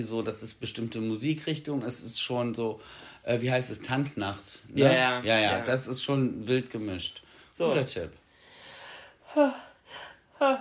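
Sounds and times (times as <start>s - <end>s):
speech: 0.0s - 8.2s, 9.3s - 10.6s
sharp breathy inhales before a sneeze: 2.8s - 3.2s, 8.3s - 9.2s.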